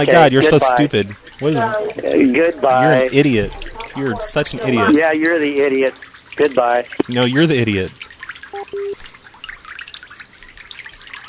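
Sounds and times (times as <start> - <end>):
speech: 0.0 - 8.0
running water: 0.0 - 11.2
short electronic beeps: 8.5 - 9.0.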